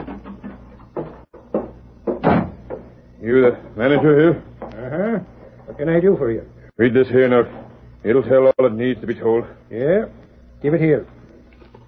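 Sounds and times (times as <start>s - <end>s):
wooden door clunking and rattling as it opens: 0.0s - 2.9s
speech: 3.2s - 11.2s.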